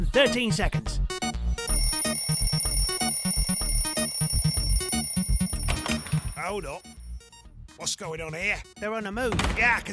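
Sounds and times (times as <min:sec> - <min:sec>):
speech: 0:00.1 - 0:01.0, 0:06.4 - 0:07.0, 0:07.8 - 0:09.9
electronic alarm clock with melodic chime pattern over pulsing bass: 0:01.6 - 0:07.4.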